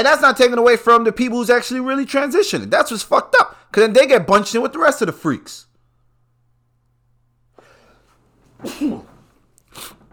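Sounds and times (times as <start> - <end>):
speech: 0.0 - 5.7, 8.6 - 9.1
faint low hum: 0.0 - 10.1
person sneezing: 8.6 - 10.1.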